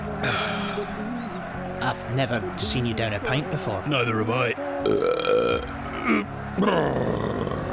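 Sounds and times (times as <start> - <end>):
speech: 0.2 - 0.5, 1.9 - 7.5
loud drawn-out gurgling burp after downing a pint of beer: 4.9 - 7.6.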